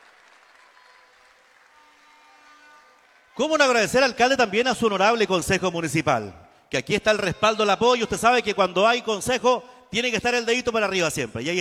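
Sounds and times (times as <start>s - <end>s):
audience applause welcoming a mayor and a deputy: 0.0s - 4.1s
speech: 3.4s - 11.6s.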